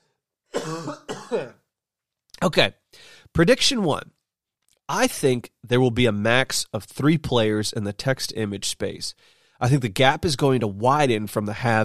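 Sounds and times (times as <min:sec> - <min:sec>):
person recovering from the flu coughing: 0:00.5 - 0:01.6
speech: 0:00.7 - 0:01.6, 0:02.4 - 0:04.2, 0:04.9 - 0:11.8.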